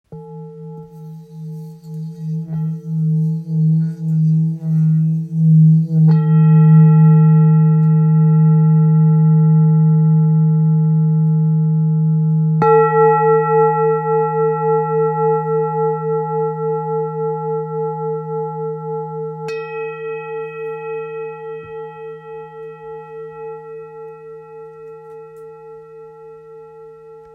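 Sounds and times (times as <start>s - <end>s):
old bowl ringing: 0.1s - 27.3s.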